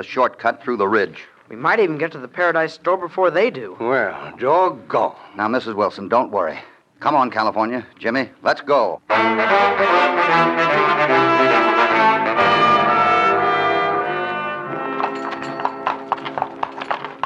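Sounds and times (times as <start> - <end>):
speech: 0.0 - 11.6
sustained orchestral music: 9.1 - 16.0
horse hooves clip-clopping as horses walk up a stream: 14.7 - 17.2.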